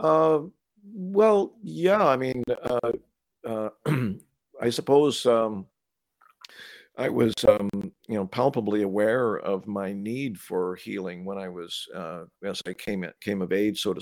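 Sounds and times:
speech: 0.0s - 5.7s, 7.0s - 13.9s
person clearing throat: 3.7s - 4.3s.

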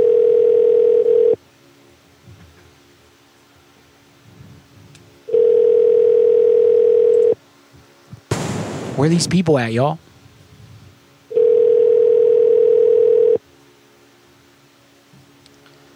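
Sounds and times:
phone line ringing tone unanswered: 0.0s - 1.4s, 5.3s - 7.4s, 11.3s - 13.4s
speech: 9.0s - 10.1s.

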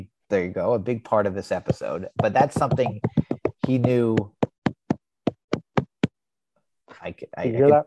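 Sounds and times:
speech: 0.3s - 4.4s, 7.0s - 7.8s
mouth popping sounds: 2.2s - 6.1s.

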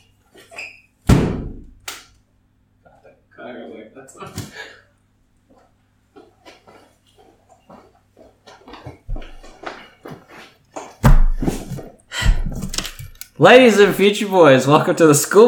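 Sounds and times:
speech: 4.0s - 4.8s, 13.4s - 15.4s
knocks and scuffling: 6.2s - 13.1s
empty box thrown at a bug thudding against a surface: 11.0s - 12.6s.

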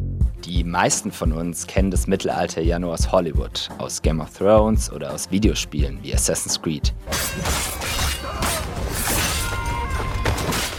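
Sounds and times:
speech: 0.6s - 8.2s
metallic crashes and clashing impacts in battle effects: 7.1s - 10.7s.

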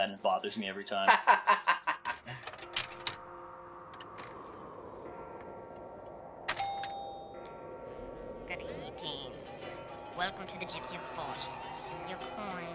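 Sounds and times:
speech: 0.0s - 1.6s, 10.2s - 12.7s
laughter: 1.1s - 2.4s
doorbell chime: 5.1s - 12.3s.

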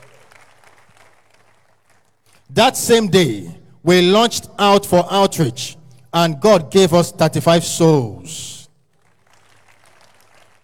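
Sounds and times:
audience clapping: 0.0s - 2.5s, 8.9s - 10.6s
speech: 2.5s - 8.6s.

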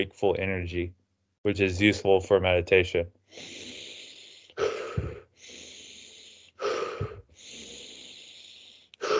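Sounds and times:
speech: 0.0s - 3.7s
forceful breathing through the nose: 3.3s - 9.1s.

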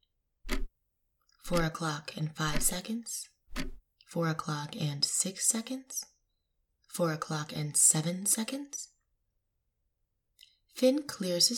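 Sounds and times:
watch ticking: 0.5s - 0.7s, 1.5s - 1.7s, 2.4s - 2.8s, 3.5s - 3.8s
speech: 1.5s - 6.1s, 6.9s - 8.9s, 10.8s - 11.5s.

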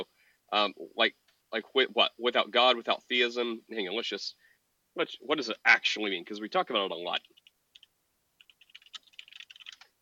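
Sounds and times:
speech: 0.0s - 4.4s, 5.0s - 7.4s
typing on a computer keyboard: 7.2s - 10.0s.

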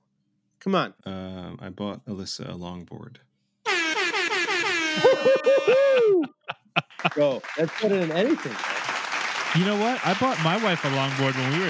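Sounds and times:
speech: 0.6s - 3.3s, 5.0s - 8.7s, 9.5s - 11.6s
air horn sound effect blasts: 3.7s - 5.4s
laughter: 4.6s - 11.6s.

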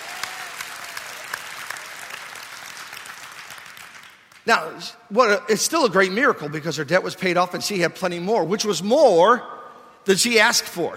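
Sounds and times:
audience clapping hands in praise: 0.0s - 4.4s
speech: 4.4s - 10.9s.

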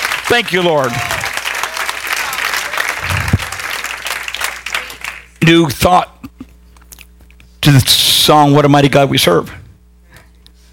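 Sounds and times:
audience clapping hands in praise: 0.0s - 5.5s
speech: 0.3s - 1.2s, 5.5s - 6.1s, 7.6s - 9.6s.

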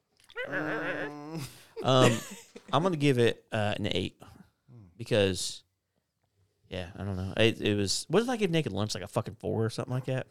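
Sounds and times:
dog giving a drawn-out high whimper: 0.3s - 1.5s
speech: 0.4s - 4.3s, 5.0s - 5.6s, 6.7s - 10.3s.

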